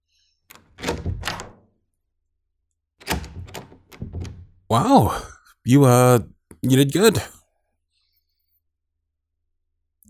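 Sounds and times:
door handle and latch rattling as a door is opened: 0.5 - 1.7, 3.0 - 4.7
speech: 4.7 - 7.4.

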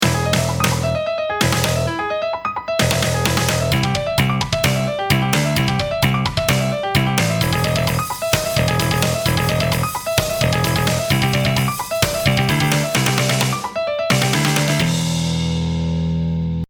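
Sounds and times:
backing track music: 0.0 - 16.6.

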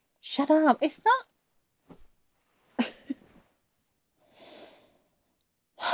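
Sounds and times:
speech: 0.2 - 1.3
drowsy breathing of a sleeping person: 4.2 - 5.2.

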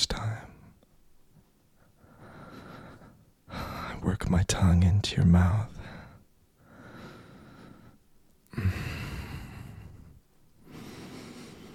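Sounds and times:
heavy breathing through the nose: 1.8 - 4.0, 5.8 - 11.7
speech: 4.0 - 5.8.

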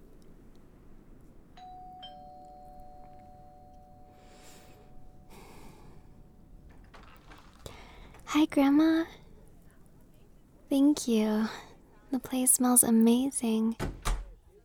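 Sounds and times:
constant rushing noise: 0.0 - 13.4
doorbell chiming with two tones: 1.5 - 8.2
speech: 8.3 - 9.2, 10.7 - 13.9.

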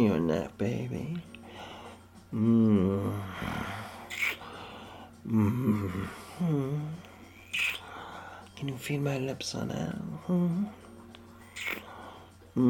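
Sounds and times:
speech: 0.0 - 1.3, 2.3 - 3.8, 5.2 - 7.0, 8.6 - 10.8
person imitating an animal's growl: 2.3 - 3.8, 5.3 - 7.0.

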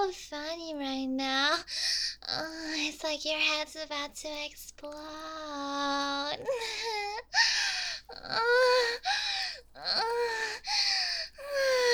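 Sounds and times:
speech: 0.0 - 11.8
person panting and gasping for air: 6.5 - 11.9.

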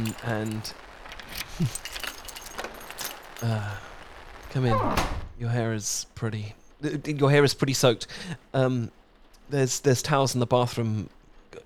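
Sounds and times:
speech: 0.0 - 0.9, 1.6 - 1.9, 3.4 - 3.9, 4.5 - 11.6
keys jingling and clinking in suit pockets: 0.0 - 3.8.

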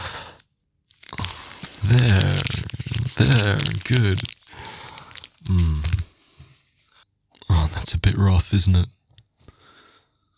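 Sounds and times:
crunchy biting and chewing of food: 0.9 - 6.0
voiced murmuring sound: 1.6 - 4.4
speech: 1.9 - 2.6, 3.2 - 4.4, 5.5 - 5.9, 7.9 - 9.0.

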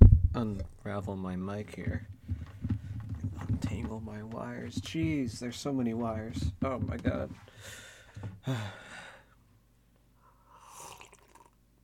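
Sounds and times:
speech: 0.4 - 2.1, 3.4 - 7.8, 8.4 - 9.1
breathy exhale: 7.5 - 9.4, 10.2 - 11.2
loud slurping sip of canned green tea: 10.3 - 11.6.

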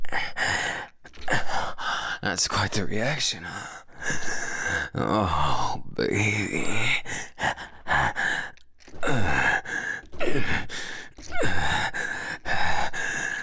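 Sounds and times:
person panting in heavy uneven breaths: 0.0 - 2.2, 3.4 - 5.6, 6.4 - 13.4
speech: 2.2 - 7.2.

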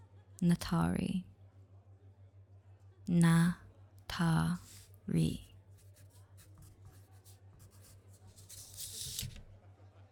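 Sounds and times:
speech: 0.4 - 1.3, 3.1 - 5.5
writing on paper: 5.7 - 9.4.

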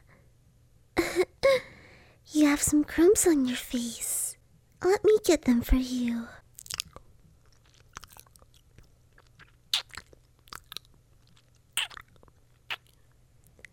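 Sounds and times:
speech: 2.4 - 4.1, 4.8 - 6.4
chewing and crunching cookies: 6.4 - 13.7.

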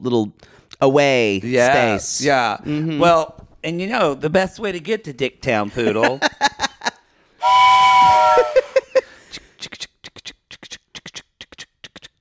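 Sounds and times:
speech: 0.0 - 6.7
laughter: 5.7 - 7.0, 8.3 - 9.2
steam train whistle: 7.4 - 8.9.

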